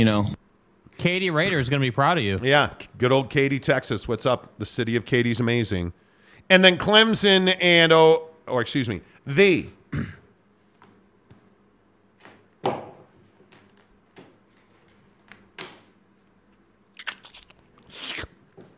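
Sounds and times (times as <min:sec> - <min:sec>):
speech: 0:00.0 - 0:00.4, 0:01.0 - 0:10.1
wet mouth noises: 0:16.8 - 0:18.7
sipping of water: 0:17.0 - 0:18.7
louder hissy slurp: 0:17.1 - 0:18.4.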